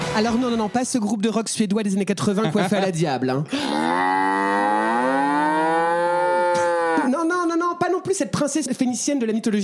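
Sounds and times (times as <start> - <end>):
speech: 0.2 - 4.1, 8.1 - 9.5
laughter: 2.2 - 3.8
bull bellowing: 3.5 - 7.1.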